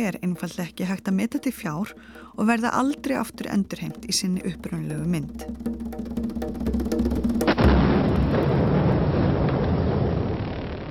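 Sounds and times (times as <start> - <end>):
speech: 0.0 - 6.2
tense tonal lead-in: 0.0 - 9.0
massive explosion demolishing giant Buddha statues in Bamiyan, Afghanistan: 7.5 - 10.8
rumbling debris and crumbling rock: 7.8 - 10.8.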